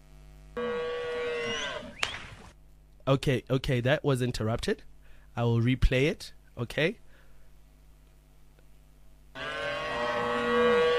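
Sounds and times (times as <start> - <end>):
cow mooing: 0.6 - 2.0, 9.4 - 10.9
speech: 3.1 - 7.0.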